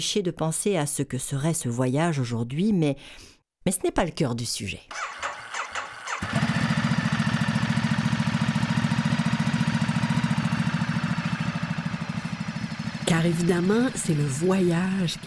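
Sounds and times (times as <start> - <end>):
speech: 0.0 - 5.2, 13.2 - 15.2
motorcycle engine cranking and idling: 5.0 - 15.2.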